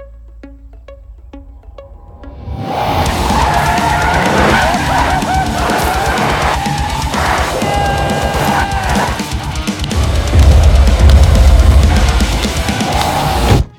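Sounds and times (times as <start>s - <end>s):
car tires squealing as the car spins in tight circles: 3.0s - 13.6s.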